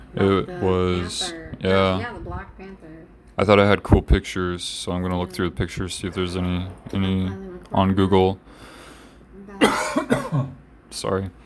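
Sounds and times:
speech: 0.1s - 8.7s, 10.3s - 11.4s
harsh coughs: 9.6s - 10.6s.

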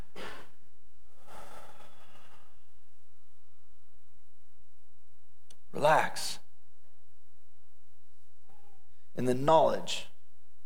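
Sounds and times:
big deep human breath: 0.0s - 2.8s
steady hiss: 0.0s - 10.6s
speech: 5.8s - 6.4s, 9.2s - 10.1s.

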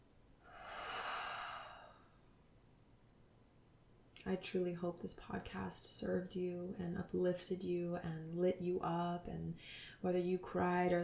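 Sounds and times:
slow deep breath: 0.4s - 2.3s
speech: 4.2s - 11.0s.

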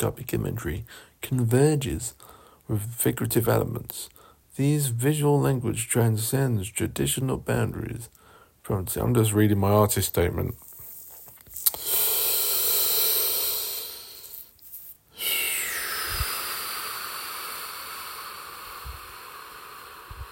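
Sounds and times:
speech: 0.0s - 10.7s
deep breathing: 0.8s - 1.2s, 2.2s - 2.6s, 4.1s - 4.5s, 8.2s - 8.6s, 11.6s - 20.3s.

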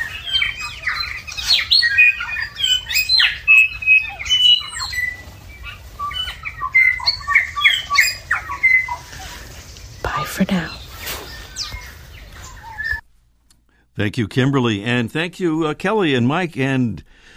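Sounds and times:
dawn chorus of bellbirds, stitchbirds, tui and whiteheads: 0.0s - 13.3s
speech: 14.0s - 17.1s.

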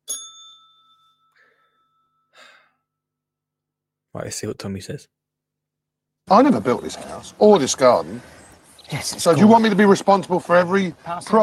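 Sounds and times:
bell ding sound effect: 0.0s - 2.4s
breathy gasp and sigh: 1.4s - 2.8s
speech: 4.2s - 5.2s, 6.3s - 11.4s.

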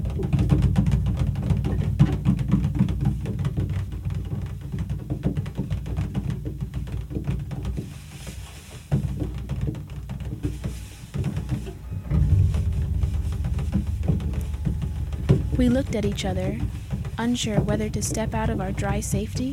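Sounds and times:
heavy downpour rain drumming on metal roof of a parked car: 0.0s - 19.5s
speech: 15.6s - 19.5s.

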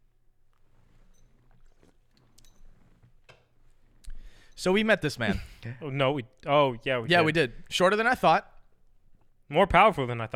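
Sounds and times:
person sipping an energy drink: 0.5s - 4.6s
speech: 4.6s - 8.5s, 9.5s - 10.3s.

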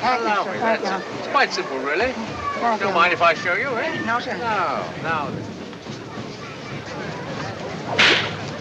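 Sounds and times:
speech: 0.0s - 5.6s
whip crack: 8.0s - 8.4s.

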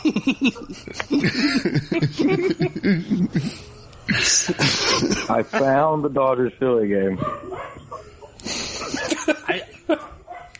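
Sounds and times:
laughter: 0.0s - 6.0s, 8.4s - 10.2s
noisy room: 0.0s - 10.5s
speech: 0.1s - 2.6s, 5.4s - 7.8s
dog barking: 7.2s - 9.2s, 9.9s - 10.5s.

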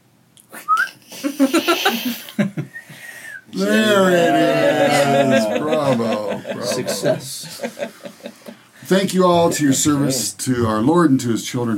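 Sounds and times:
faint thin whistle tone: 0.6s - 1.0s
laughter and giggling: 1.1s - 2.8s, 4.9s - 8.6s
speech: 1.4s - 2.4s, 3.6s - 8.2s, 8.9s - 11.7s
person whistling while inhaling: 2.0s - 3.5s.

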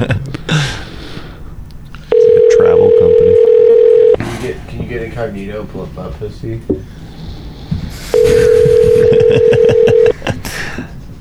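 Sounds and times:
laughter: 0.0s - 3.5s, 4.2s - 11.1s
people talking: 0.0s - 11.1s
outgoing phone call ringing tone: 2.0s - 4.2s, 8.1s - 10.2s.

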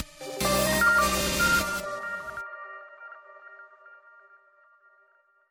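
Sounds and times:
loud harsh buzzy electronic alert tones from a phone and computer: 0.2s - 4.5s
clear ringing chime notes: 0.2s - 5.3s.

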